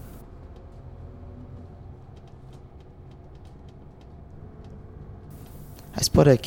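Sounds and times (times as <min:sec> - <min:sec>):
city bus engine rumble in motion in Finland heard from inside: 0:00.0 - 0:06.4
faint rattles and clicks inside a city bus: 0:00.4 - 0:06.0
speech: 0:06.0 - 0:06.4.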